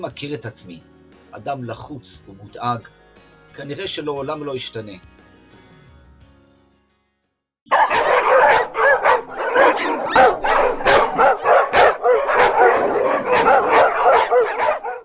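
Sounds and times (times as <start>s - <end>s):
speech: 0.0s - 5.1s
pack of dogs barking and yipping over bones in the street: 7.7s - 15.0s.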